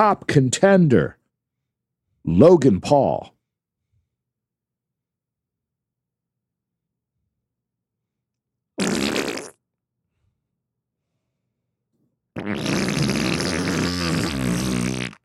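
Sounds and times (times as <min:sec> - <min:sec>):
speech: 0:00.0 - 0:01.2, 0:02.2 - 0:03.3
person blowing a wet sputtering raspberry imitating a wet fart: 0:08.8 - 0:09.6, 0:12.4 - 0:15.2.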